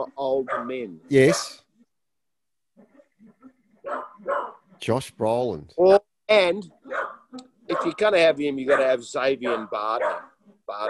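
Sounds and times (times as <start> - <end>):
speech: 0.1 - 1.6, 4.8 - 6.8, 7.7 - 10.8
dogs barking: 0.2 - 1.6, 2.8 - 4.9, 6.8 - 10.8.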